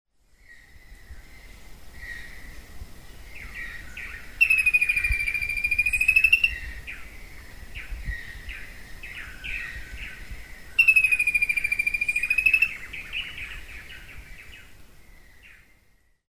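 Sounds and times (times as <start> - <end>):
Formicarius colma galinha do mato calling: 3.4 - 7.1, 8.2 - 14.7.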